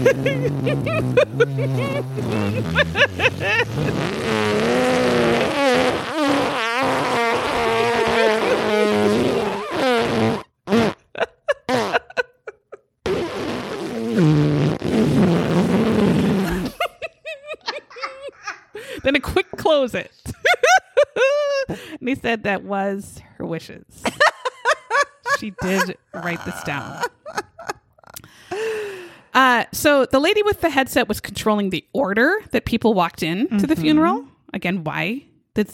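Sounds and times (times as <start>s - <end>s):
laughter: 0.0s - 4.3s, 7.3s - 9.7s, 11.0s - 12.8s, 16.4s - 21.9s, 24.0s - 28.9s
speech: 0.0s - 5.0s, 22.4s - 24.3s, 25.4s - 27.5s, 29.3s - 35.7s
long drawn-out fart: 0.0s - 17.8s.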